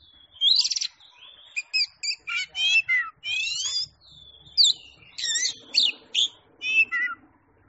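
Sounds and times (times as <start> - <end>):
champion Oriental magpie-robin singing: 0.0 - 7.2.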